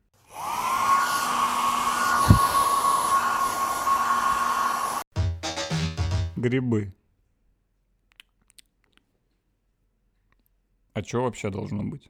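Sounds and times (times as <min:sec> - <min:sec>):
hair dryer blowing with a high whine: 0:00.2 - 0:05.1
speech: 0:06.4 - 0:07.0, 0:11.0 - 0:12.0.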